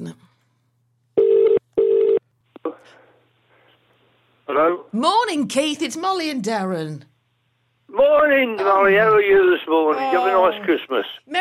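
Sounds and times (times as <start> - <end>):
phone ringback tone on a call: 1.2 - 2.2
speech: 4.5 - 7.1, 7.9 - 11.4.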